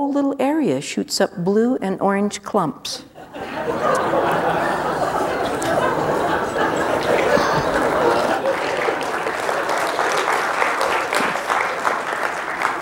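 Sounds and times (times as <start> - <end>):
speech: 0.0 - 4.5
people chuckling: 3.2 - 12.8
faint murmuring: 3.6 - 9.5
crowd applauding: 3.9 - 12.8.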